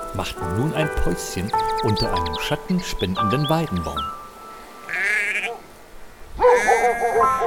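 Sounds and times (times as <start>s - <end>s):
speech: 0.1s - 4.2s
flock of sheep bleating on a meadow at a forest edge: 4.8s - 5.6s, 6.4s - 7.3s.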